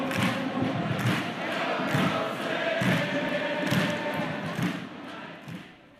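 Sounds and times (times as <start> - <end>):
thumping drumbeats: 0.0 - 5.8
large stadium crowd roaring at a soccer game: 0.0 - 5.9.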